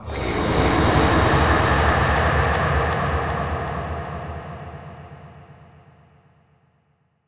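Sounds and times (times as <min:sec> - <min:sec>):
distant abstract short monster scream: 0:00.0 - 0:03.6.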